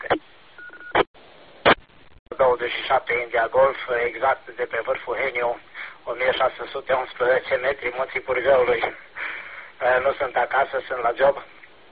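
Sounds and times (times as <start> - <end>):
telegraph-style beep tone over a radio channel: 0.0 - 1.0
loud crackling bursts of radio static: 0.0 - 11.7
speech: 2.6 - 9.1, 9.8 - 11.5.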